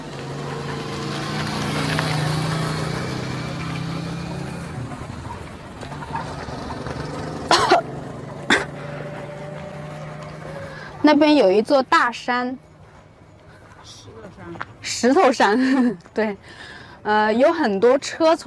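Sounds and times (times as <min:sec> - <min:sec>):
motorcycle engine passing by: 0:00.0 - 0:12.8
speech: 0:11.1 - 0:12.7, 0:15.0 - 0:18.4.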